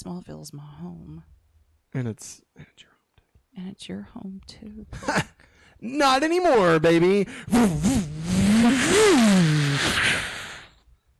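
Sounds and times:
speech: 0.0 - 3.0, 3.6 - 10.4
motorcycle engine revving and roaring off: 7.5 - 9.8.

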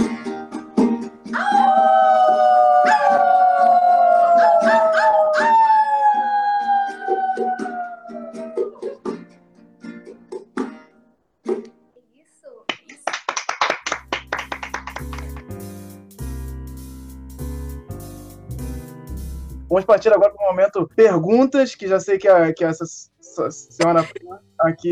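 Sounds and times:
wolf howling: 1.3 - 9.0
speech: 19.9 - 24.8.

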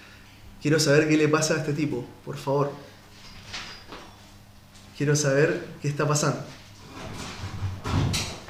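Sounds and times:
speech: 0.6 - 2.9, 5.0 - 6.6
heavy shelter door sliding open: 6.8 - 8.4.

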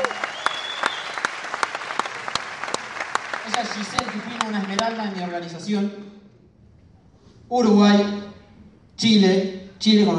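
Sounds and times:
audience applause: 0.0 - 5.3
speech: 3.5 - 6.2, 7.5 - 8.2, 9.0 - 10.1.

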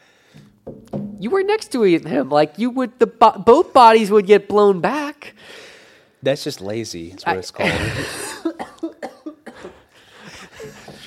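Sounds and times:
speech: 1.2 - 5.2, 6.2 - 8.3
laughter: 7.6 - 9.0, 9.6 - 11.0
person coughing fit after hard laughter: 7.6 - 9.9.

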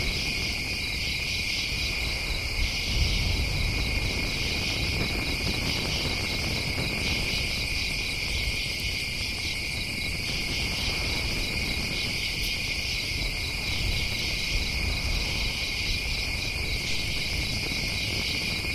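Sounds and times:
night insects in a forest trilling: 0.0 - 18.7.

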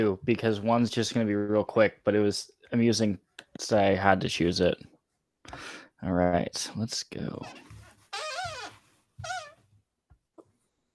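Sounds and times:
speech: 0.0 - 4.9, 5.5 - 8.6
squeaky rocking chair creaking: 7.4 - 9.6.

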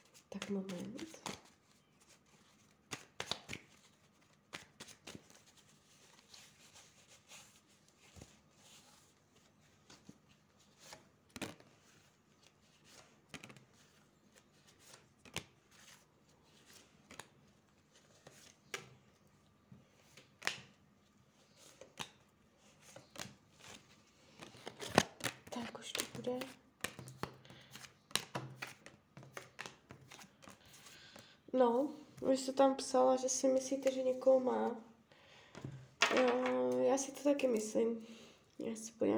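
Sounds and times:
tarot cards shuffled and handled during a reading: 0.0 - 19.2, 19.8 - 31.3
speech: 0.3 - 1.3, 31.6 - 34.9, 37.0 - 39.1.

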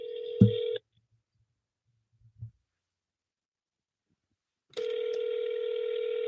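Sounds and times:
phone line ringing with steady electronic ringing: 0.0 - 0.8, 4.8 - 6.2.

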